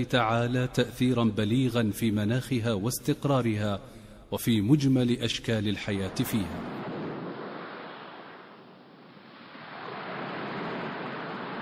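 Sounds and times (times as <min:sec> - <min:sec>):
speech: 0:00.0 - 0:06.9
sea waves breaking: 0:05.7 - 0:11.6.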